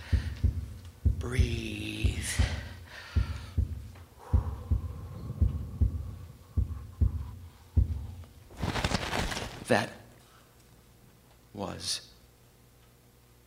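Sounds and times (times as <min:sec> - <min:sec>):
heart pounding heartbeat: 0:00.0 - 0:09.1
speech: 0:01.3 - 0:01.7, 0:09.7 - 0:10.0, 0:11.8 - 0:12.1.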